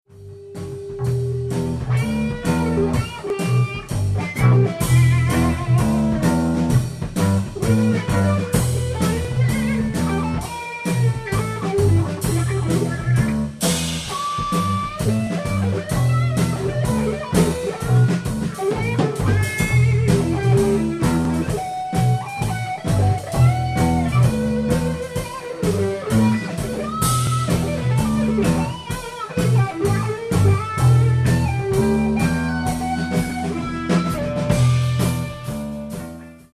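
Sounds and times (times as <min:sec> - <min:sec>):
wailing wah guitar: 0:00.3 - 0:36.5.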